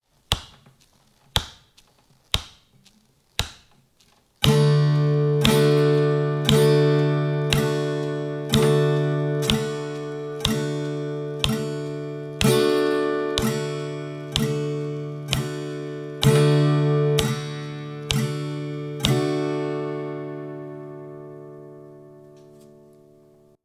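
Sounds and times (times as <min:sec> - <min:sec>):
simple strum: 0:04.4 - 0:23.6.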